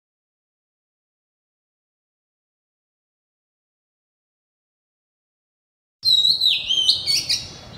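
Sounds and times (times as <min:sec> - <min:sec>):
Oriental magpie-robin singing in the loud open ngeplong style: 0:06.0 - 0:07.6.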